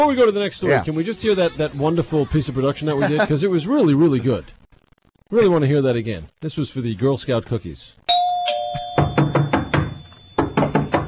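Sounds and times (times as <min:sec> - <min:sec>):
speech: 0:00.0 - 0:04.6, 0:05.3 - 0:08.0
ringing tone: 0:08.1 - 0:11.0
aggressive knocking on a door: 0:09.0 - 0:11.0.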